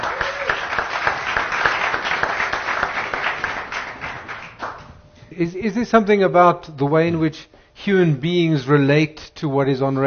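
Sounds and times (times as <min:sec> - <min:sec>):
audience applauding a panel of speakers: 0:00.0 - 0:04.9
speech: 0:05.4 - 0:10.0.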